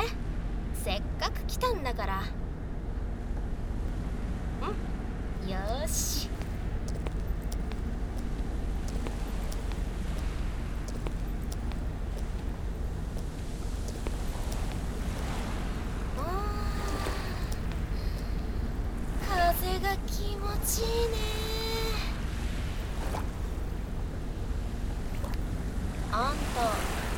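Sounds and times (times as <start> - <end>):
wind: 0.0 - 27.1
speech: 1.6 - 2.4, 5.5 - 6.4
ocean waves washing onto the shore: 7.8 - 19.5, 26.2 - 27.1.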